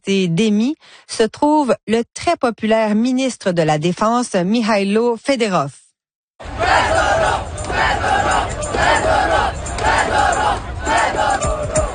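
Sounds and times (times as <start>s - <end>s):
speech: 0.0s - 5.8s
large crowd of protesters chanting in the streets: 6.4s - 11.9s.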